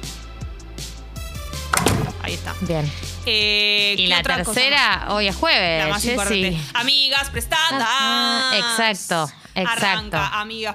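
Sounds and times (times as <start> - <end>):
door pushed shut with dull low thumps and knocks: 1.7 - 2.2
speech: 2.3 - 10.7.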